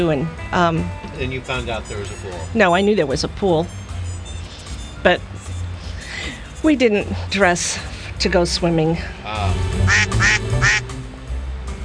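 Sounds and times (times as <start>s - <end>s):
speech: 0.0s - 3.8s, 5.0s - 5.3s, 6.6s - 10.8s
duck quacking: 9.9s - 10.8s.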